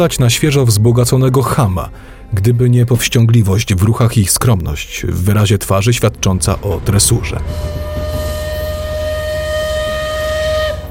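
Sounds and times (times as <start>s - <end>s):
speech: 0.0s - 7.8s
low rumbling of the train pulling into a station: 0.1s - 10.8s
steam locomotive whistle: 7.4s - 10.8s.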